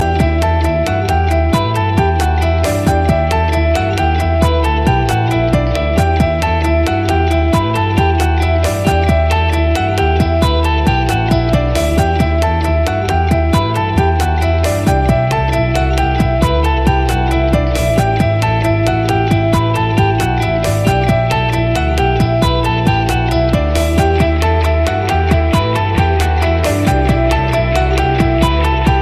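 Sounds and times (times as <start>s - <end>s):
mobile ringtone: 0.0s - 29.0s.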